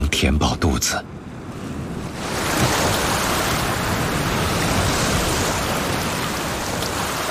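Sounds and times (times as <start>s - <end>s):
speech: 0.1s - 1.2s
waves of a rising tide washing onto a shore: 1.8s - 7.2s.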